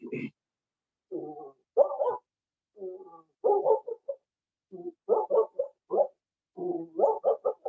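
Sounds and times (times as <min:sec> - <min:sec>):
human voice imitating a dog barking from three blocks away: 0:01.1 - 0:02.2, 0:02.8 - 0:05.8, 0:06.6 - 0:07.6.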